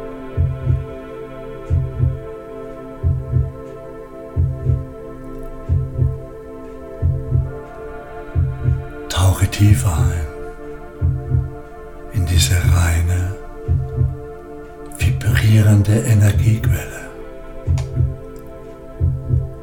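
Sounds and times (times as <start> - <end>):
slow deep heartbeat thumping in lub-dub pairs: 0.4 - 0.9, 1.7 - 2.3, 3.0 - 5.0, 5.6 - 10.4, 11.0 - 14.4, 15.0 - 17.0, 17.6 - 18.4, 19.0 - 19.6.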